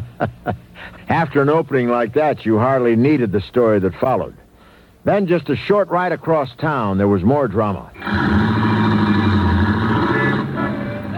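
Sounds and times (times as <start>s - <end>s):
speech: 0.2s - 4.4s, 5.0s - 8.6s
car engines idling and revving in dense traffic on Broadway and 42nd Street: 8.0s - 11.1s.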